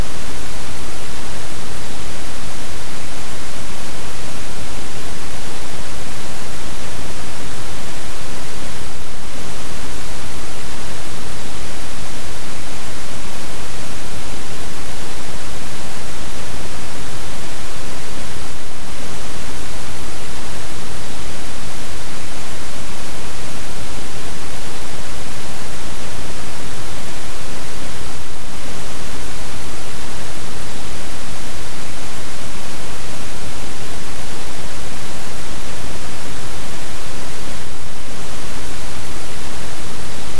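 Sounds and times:
pink noise hiss with soft low rumble: 0.0 - 40.3.

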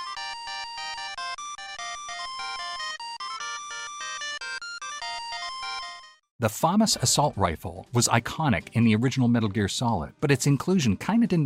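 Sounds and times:
electronic video game ringtone: 0.0 - 6.3
speech: 6.4 - 11.4.

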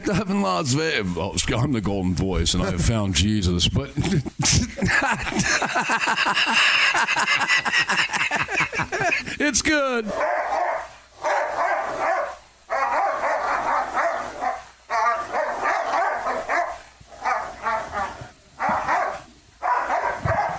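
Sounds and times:
speech: 0.1 - 10.4
laughter: 3.8 - 9.7
dog barking: 10.1 - 20.5.

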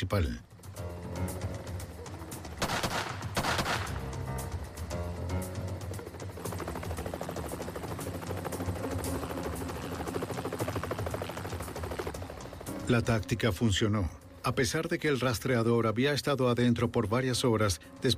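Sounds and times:
speech: 0.0 - 0.5, 12.9 - 18.1
helicopter rotor thumping overhead: 2.3 - 12.8
SWAT team sniper rifle shots: 2.6 - 4.0.

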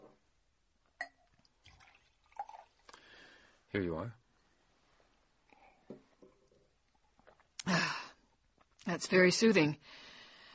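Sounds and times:
water poured from a carafe into a glass: 1.0 - 3.0
speech: 3.7 - 4.2, 9.0 - 10.0.

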